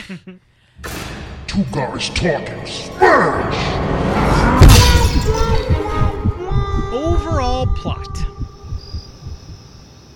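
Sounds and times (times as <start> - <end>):
speech: 0.1 - 6.2, 6.9 - 8.3
soft low thumps: 2.9 - 9.8
crickets chirping: 6.6 - 10.1.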